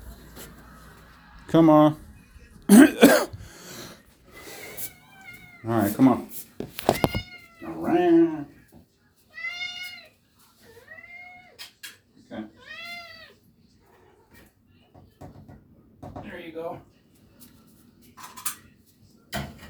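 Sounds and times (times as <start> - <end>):
speech: 1.5 - 2.0, 2.7 - 3.3, 5.6 - 6.4
cat meowing while being fed dry cat food: 4.4 - 5.7, 6.8 - 8.4, 9.3 - 11.6, 12.4 - 14.4.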